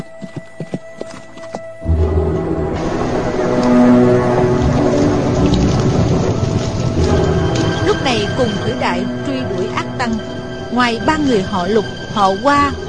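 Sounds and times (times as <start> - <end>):
horse galloping hard in pursuit: 0.0 - 8.6
heavy rushing wash: 2.0 - 12.8
speech: 10.8 - 12.8.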